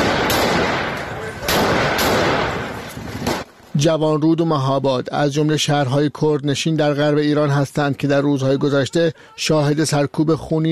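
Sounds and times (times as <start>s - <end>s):
loud gunshots fired at protesters: 0.0s - 3.5s
speech: 3.8s - 10.7s.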